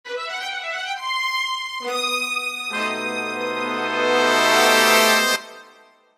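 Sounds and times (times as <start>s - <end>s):
tense strings and brass music building: 2.0s - 5.9s.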